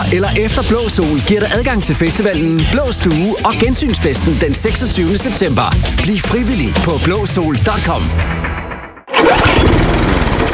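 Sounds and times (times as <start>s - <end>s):
speech: 0.1s - 8.6s
lawn mower engine running: 9.1s - 10.5s.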